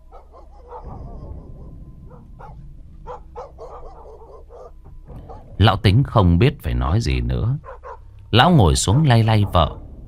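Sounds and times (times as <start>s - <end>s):
dogs barking in the distance in a village at night: 0.0s - 5.6s, 7.5s - 9.9s
low steady rumble: 0.0s - 10.0s
speech: 5.6s - 7.7s, 8.3s - 9.8s.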